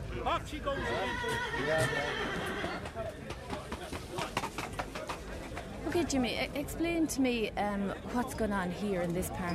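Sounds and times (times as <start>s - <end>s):
speech: 0.2s - 3.4s, 5.9s - 9.5s
horse whinnying at a fair: 0.8s - 2.9s
hoof clops of horses trotting past at a fair: 1.1s - 5.8s.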